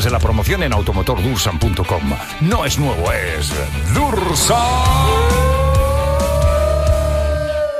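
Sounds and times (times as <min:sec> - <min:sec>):
speech: 0:00.0 - 0:05.6
voice imitating a passing car engine hum: 0:04.1 - 0:07.6.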